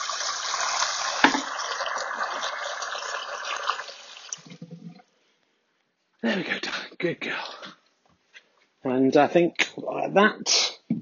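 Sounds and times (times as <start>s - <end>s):
water pouring into a dog's bowl: 0.0s - 5.1s
speech: 6.2s - 7.6s, 8.8s - 10.6s.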